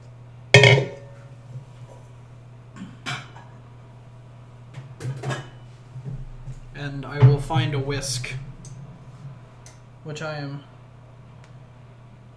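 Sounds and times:
large mixing bowl being taken out and handled: 0.6s - 1.2s
steady low hum: 0.6s - 1.3s, 6.2s - 10.1s
speech: 6.8s - 8.5s, 10.1s - 10.7s.

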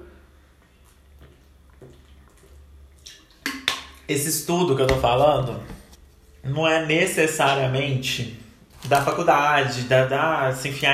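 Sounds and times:
person drinking water: 0.0s - 4.1s
sharper splashy gulps: 0.8s - 4.1s
speech: 4.1s - 5.8s, 6.4s - 10.9s.

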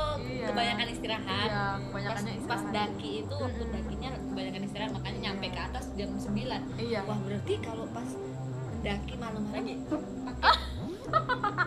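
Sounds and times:
speech: 0.6s - 11.6s
rhythmic laughter: 10.4s - 11.6s
low buzzing fart: 10.6s - 11.3s.

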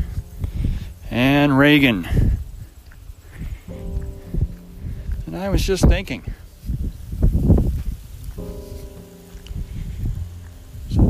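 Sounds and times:
wind gusting and buffeting outdoors: 0.0s - 11.0s
speech: 1.1s - 2.3s, 5.4s - 6.4s.

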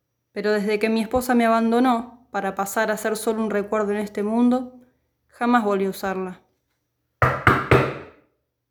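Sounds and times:
speech: 0.4s - 6.4s
knocks on a heavy front door: 7.2s - 8.2s.

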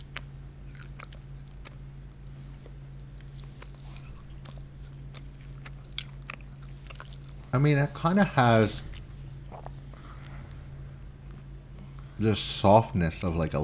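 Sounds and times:
chewing milk chocolate: 0.0s - 7.6s, 8.8s - 12.1s
faint steady hum: 0.0s - 13.6s
speech: 7.6s - 8.9s, 12.2s - 13.6s.

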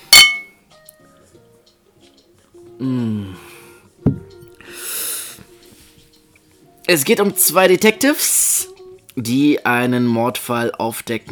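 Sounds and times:
glasses clinking in a toast: 0.0s - 0.6s
speech: 2.8s - 3.4s, 6.9s - 8.6s, 9.2s - 11.3s.

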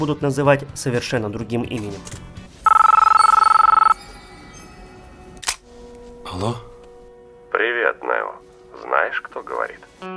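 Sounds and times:
speech: 0.0s - 2.4s, 6.3s - 6.7s, 9.0s - 10.1s
telephone ringing with electronic chirps: 2.7s - 4.0s.

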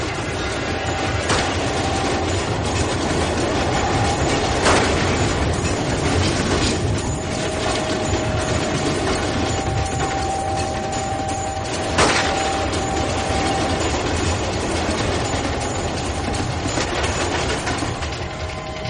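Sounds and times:
sharp metallic bangs: 0.0s - 18.8s
train rolling past at night: 0.0s - 18.8s
train wheels clattering: 0.0s - 18.8s.

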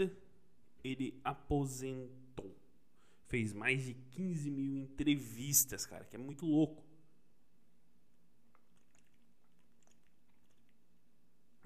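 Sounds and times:
speech: 0.0s - 0.2s, 0.8s - 2.6s, 3.3s - 6.9s
low hum: 0.0s - 11.6s
person taking a quiet sip of water: 8.5s - 10.9s.

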